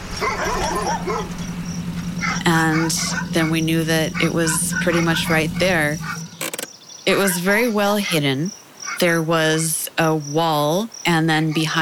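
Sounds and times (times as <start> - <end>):
dogs with whiny rising yelps: 0.0 - 6.4
several dogs barking and yipping: 0.0 - 6.4, 7.2 - 9.1
steady low hum: 0.0 - 6.4
speech: 0.2 - 1.5, 2.2 - 6.2, 7.1 - 11.7.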